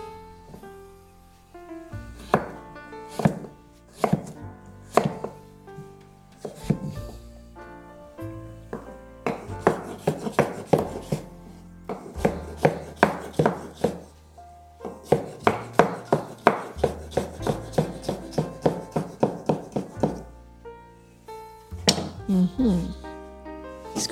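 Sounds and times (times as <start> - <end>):
knife chopping little gem lettuce into cubes on a board: 2.3 - 4.3, 4.9 - 5.4, 9.3 - 11.3, 11.9 - 14.1, 14.9 - 20.2
person speaking: 21.8 - 23.1, 23.9 - 24.1.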